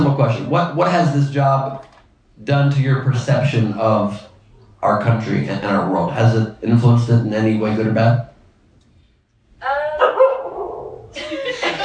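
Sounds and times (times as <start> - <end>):
speech: 0.2 - 8.3
dog barking: 10.0 - 11.0
laughter: 11.2 - 11.8.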